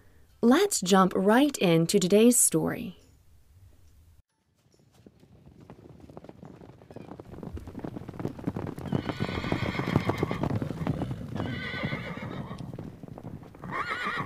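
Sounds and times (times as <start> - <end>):
speech: 0.4 - 3.0
hooves clip-clopping: 4.3 - 14.2
horse neighing and whinnying: 8.9 - 12.6, 13.6 - 14.2.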